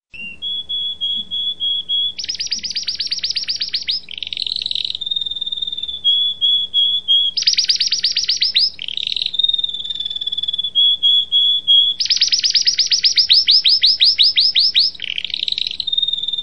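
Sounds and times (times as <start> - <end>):
canary singing: 0.1 - 16.4.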